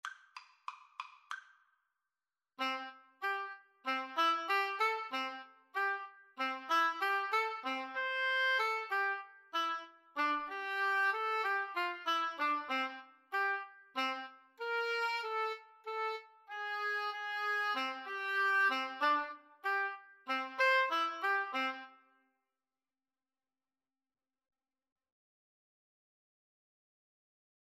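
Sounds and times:
oboe duet: 0:02.6 - 0:22.0.

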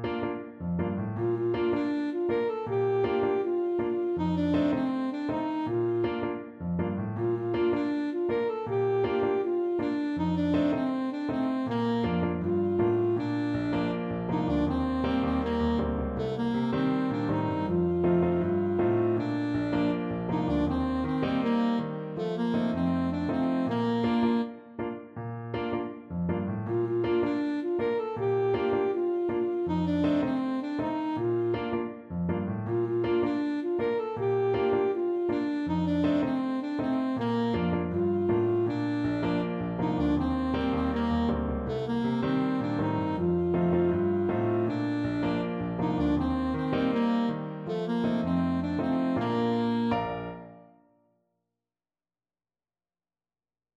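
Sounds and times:
saxophone playing: 0:00.1 - 0:50.9.

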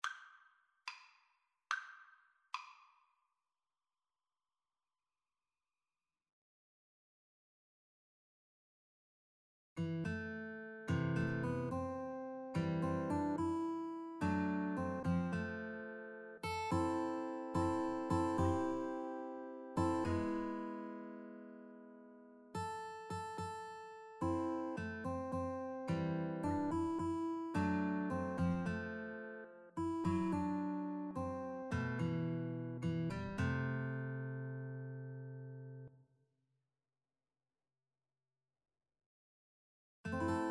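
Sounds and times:
guitar duet: 0:09.8 - 0:35.9, 0:40.1 - 0:40.4.

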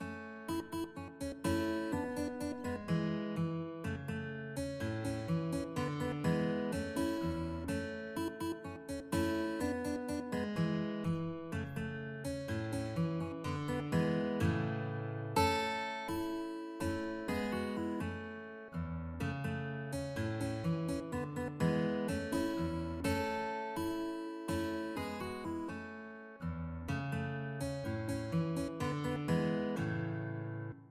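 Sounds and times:
guitar: 0:00.0 - 0:30.8.

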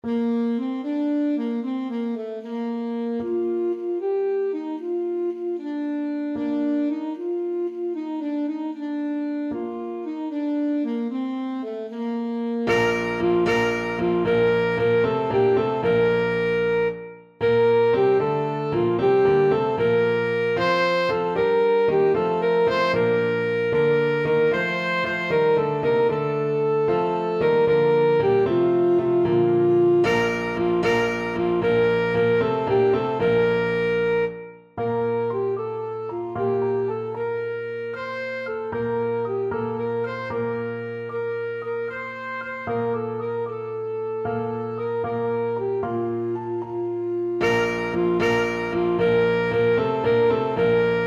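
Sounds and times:
saxophone: 0:00.0 - 0:51.0.

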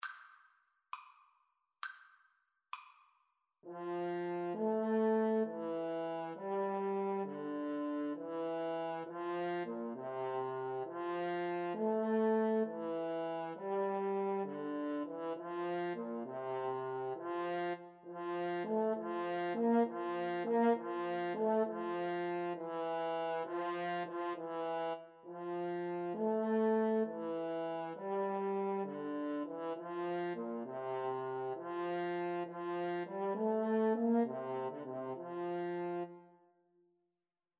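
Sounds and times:
French horn duet playing a classical sonata: 0:03.7 - 0:36.2.

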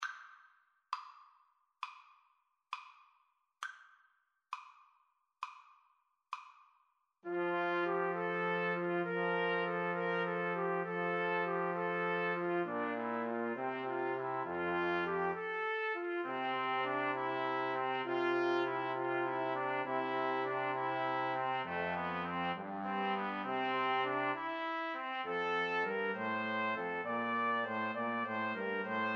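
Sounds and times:
clarinet: 0:07.3 - 0:29.1
trombone: 0:07.3 - 0:29.1
trumpets: 0:07.3 - 0:29.1.

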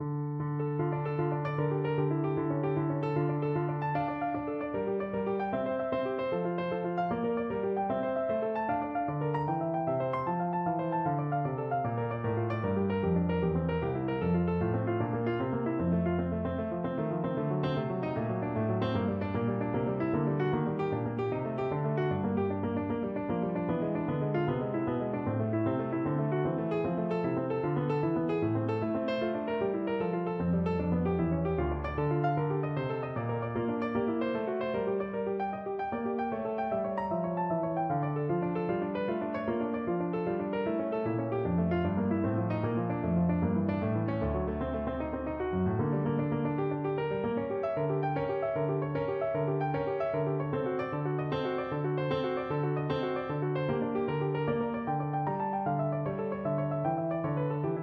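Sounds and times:
piano prelude in D minor: 0:00.0 - 0:57.8.

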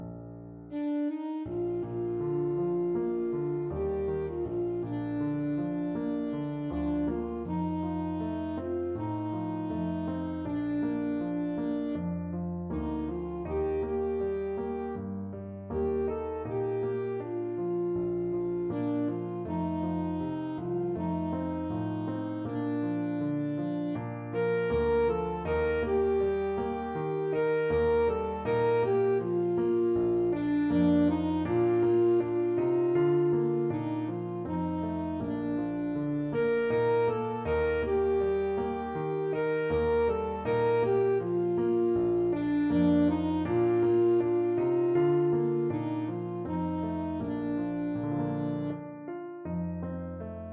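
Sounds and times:
saxophone: 0:00.6 - 0:49.9.

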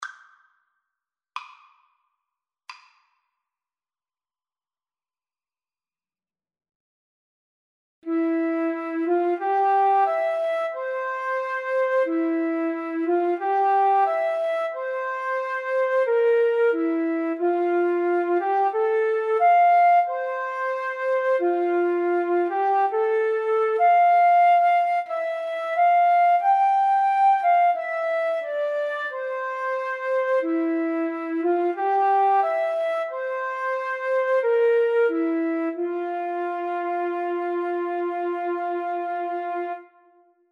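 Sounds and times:
yodel flute duet: 0:08.0 - 0:40.2.

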